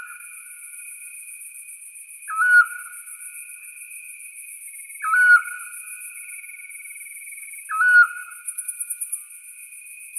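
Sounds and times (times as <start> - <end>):
Eurasian scops owl calling: 2.3 - 2.9, 5.0 - 5.7, 7.7 - 8.3.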